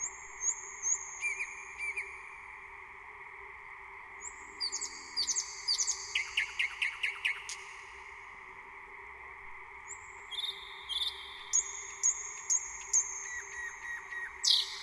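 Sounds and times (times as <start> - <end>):
thrush nightingale singing: 0.0 - 2.2, 4.2 - 7.6, 9.9 - 14.8.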